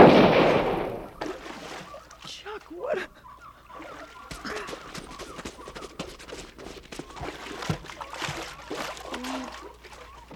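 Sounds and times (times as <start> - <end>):
rifle shot: 0.0 - 1.1.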